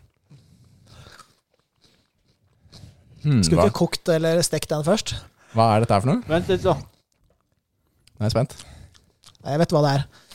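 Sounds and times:
crunching while chewing food: 0:00.0 - 0:03.7, 0:06.9 - 0:10.3
speech: 0:03.2 - 0:06.9, 0:08.2 - 0:08.7, 0:09.4 - 0:10.2.

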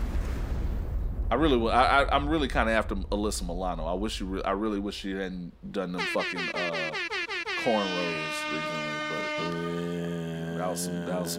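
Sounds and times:
deep rolling explosion rumble: 0:00.0 - 0:05.2
speech: 0:01.3 - 0:07.0, 0:07.6 - 0:11.3.

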